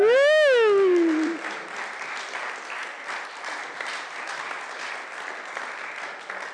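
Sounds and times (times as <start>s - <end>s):
person cheering: 0.0s - 1.4s
audience clapping: 0.0s - 6.5s.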